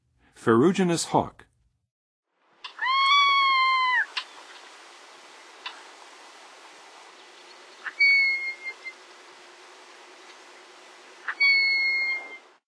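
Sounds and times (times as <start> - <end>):
Ferruginous Hawk calling in the Western USA: 2.6 - 4.7, 7.2 - 9.1, 11.2 - 12.5.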